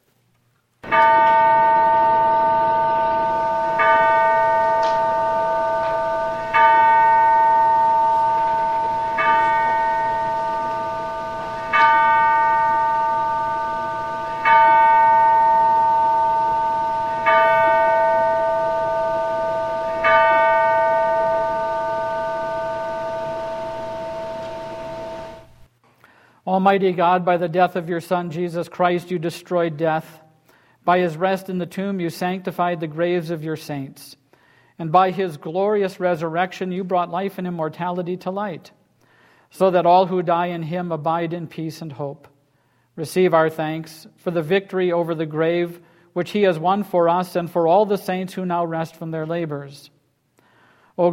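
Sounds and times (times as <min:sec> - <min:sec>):
single church bell tolling: 0:00.8 - 0:25.7
speech: 0:26.6 - 0:30.2, 0:30.9 - 0:34.2, 0:34.8 - 0:38.8, 0:39.5 - 0:42.3, 0:43.0 - 0:50.0, 0:51.0 - 0:51.1.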